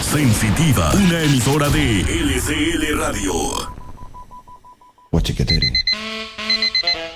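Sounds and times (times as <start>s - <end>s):
speech: 0.1s - 3.7s, 5.1s - 6.3s
alarm clock beeping: 4.2s - 7.1s.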